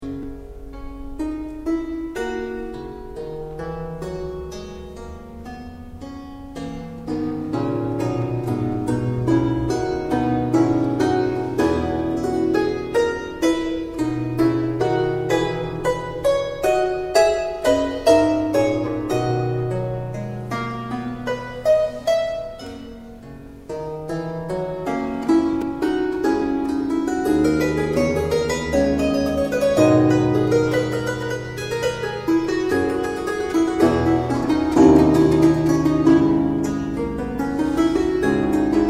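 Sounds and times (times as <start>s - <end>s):
historical harps playing: 0.0s - 38.8s.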